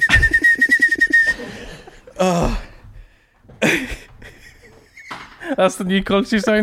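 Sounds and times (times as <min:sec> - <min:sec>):
person whistling a dance-tune riff: 0:00.0 - 0:01.5
breathy bursts of laughter: 0:00.0 - 0:02.7, 0:03.6 - 0:05.6
speech: 0:02.2 - 0:02.6, 0:05.6 - 0:06.6.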